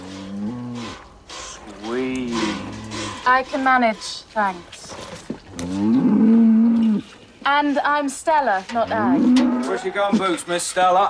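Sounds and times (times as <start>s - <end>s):
cow mooing while being hand-milked: 0.0s - 1.0s, 2.3s - 3.3s, 5.5s - 7.1s, 8.8s - 10.2s
speech: 3.2s - 4.8s, 7.4s - 11.0s.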